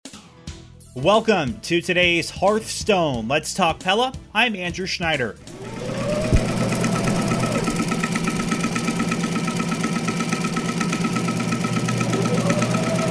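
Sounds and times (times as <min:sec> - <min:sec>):
speech: 0:01.0 - 0:05.8
sewing machine stitching quilts: 0:05.4 - 0:13.0.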